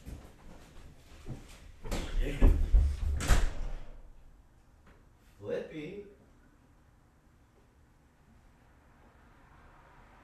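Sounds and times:
closet door being pulled open: 1.8s - 4.0s.

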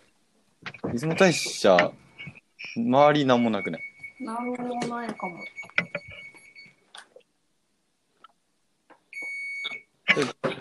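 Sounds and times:
speech: 0.9s - 2.0s, 2.6s - 5.7s, 10.2s - 10.4s
washing machine high-pitched electronic beeps: 1.1s - 6.8s, 9.1s - 9.9s.

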